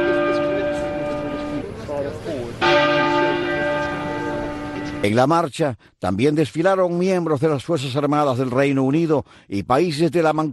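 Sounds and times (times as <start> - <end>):
bell in a clock tower tolling during a funeral procession: 0.0 - 5.2
speech: 5.0 - 10.5.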